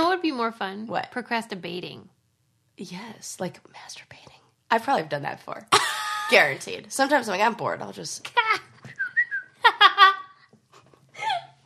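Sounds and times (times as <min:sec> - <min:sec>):
speech: 0:00.4 - 0:02.2, 0:02.8 - 0:08.6
person laughing: 0:05.7 - 0:06.6, 0:09.6 - 0:10.4, 0:11.2 - 0:11.6
person whistling short rising notes: 0:08.9 - 0:09.6.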